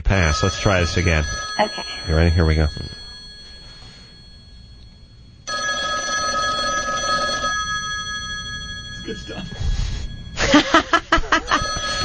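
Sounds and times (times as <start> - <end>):
voices: 0.0 - 2.9
telephone ringing with a buzzing electronic trill: 0.0 - 12.0
speech: 0.1 - 3.0
laughter: 10.4 - 12.0.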